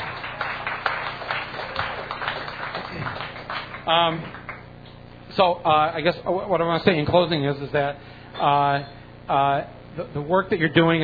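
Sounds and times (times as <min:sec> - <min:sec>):
audience clapping: 0:00.0 - 0:04.7
speech: 0:03.9 - 0:04.4, 0:05.4 - 0:11.0.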